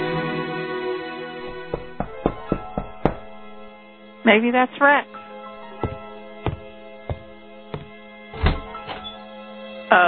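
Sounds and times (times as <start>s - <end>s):
steady tonal hum: 0.1s - 10.0s
firm knocks on an apartment door: 1.4s - 3.7s, 5.8s - 8.6s
speech: 4.3s - 5.2s.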